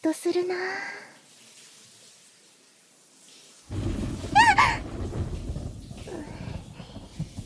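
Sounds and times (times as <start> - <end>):
speech: 0.1 - 1.0
thunder rumbling: 3.7 - 7.4.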